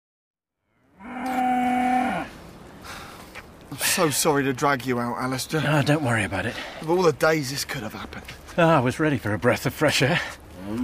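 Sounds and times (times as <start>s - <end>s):
faint ambient hiss: 0.7s - 10.8s
cow mooing at Grange Farm: 1.0s - 2.3s
speech: 3.7s - 10.8s.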